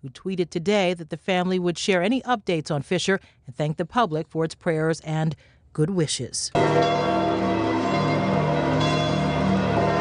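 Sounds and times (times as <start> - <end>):
speech: 0.0 - 7.7
church bells ringing out at the Vatican after the Christmas message: 6.6 - 9.9.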